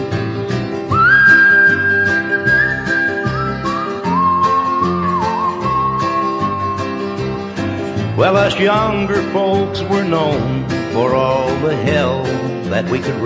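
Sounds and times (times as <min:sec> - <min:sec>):
rhythmic instrumental accompaniment: 0:00.0 - 0:13.2
person whistling a hymn melody: 0:00.9 - 0:09.3
speech: 0:08.2 - 0:13.2.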